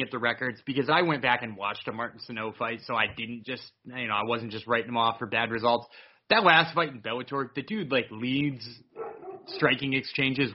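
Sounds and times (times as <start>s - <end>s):
speech: 0.0s - 10.5s
dog barking: 9.0s - 9.7s.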